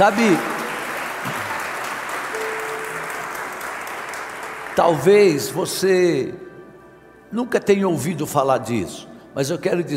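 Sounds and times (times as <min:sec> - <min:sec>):
speech: 0:00.0 - 0:00.5, 0:04.8 - 0:06.5, 0:07.3 - 0:09.9
audience applauding: 0:00.0 - 0:05.2.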